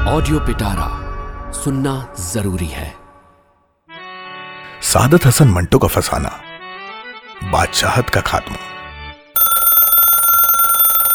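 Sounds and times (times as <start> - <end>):
speech: 0.1 - 3.0, 4.8 - 6.5, 7.4 - 8.7
telephone bell ringing: 9.4 - 11.1.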